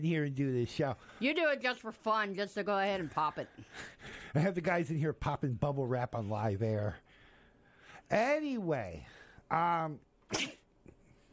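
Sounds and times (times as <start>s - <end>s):
speech: 0.0s - 7.0s, 8.1s - 10.6s
loud sneeze: 10.3s - 10.7s.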